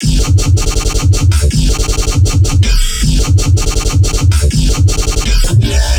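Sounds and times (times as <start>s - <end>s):
trap and dubstep bass loop in G: 0.0s - 5.9s.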